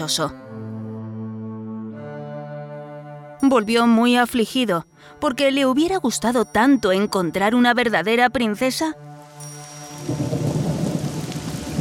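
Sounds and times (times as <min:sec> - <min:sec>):
speech: 0:00.0 - 0:00.5, 0:03.4 - 0:09.1
heavy rain pouring: 0:09.9 - 0:11.7
deep rolling thunder: 0:10.0 - 0:11.7.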